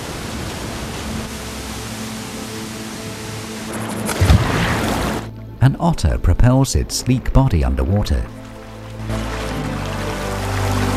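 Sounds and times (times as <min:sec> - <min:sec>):
waterfall gushing down a mountainside: 0:00.0 - 0:05.3, 0:07.7 - 0:10.9
speech: 0:05.6 - 0:08.4.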